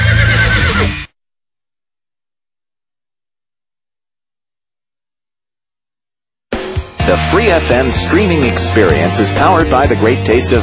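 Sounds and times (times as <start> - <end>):
horse neighing: 0.0 - 1.1
speech: 7.1 - 10.6.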